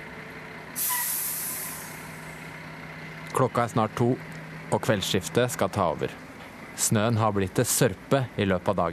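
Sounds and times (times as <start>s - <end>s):
garbage truck engine idling with low rumble: 0.0s - 8.9s
garbage truck air brake hissing: 0.8s - 2.4s
speech: 3.4s - 6.2s, 6.8s - 8.9s.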